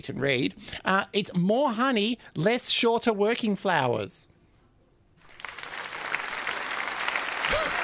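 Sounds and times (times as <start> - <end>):
speech: 0.0 - 4.3
crowd applauding politely: 5.2 - 7.8.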